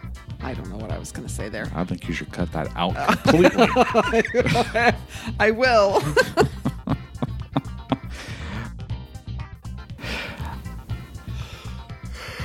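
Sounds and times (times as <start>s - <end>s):
speech: 0.1s - 6.6s
laughter: 3.0s - 8.6s
breathy inhale and exhale: 5.0s - 5.4s, 8.0s - 8.8s, 10.0s - 12.4s
person yawning into the microphone: 8.0s - 8.7s.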